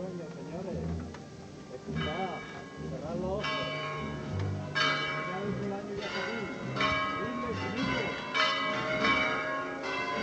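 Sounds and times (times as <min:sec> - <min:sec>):
church bells ringing in an overlapping peal: 0:01.8 - 0:10.2.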